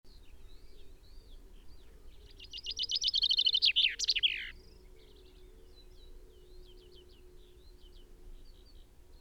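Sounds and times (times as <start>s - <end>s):
Common chaffinch Fringilla coelebs song: 2.2s - 5.3s.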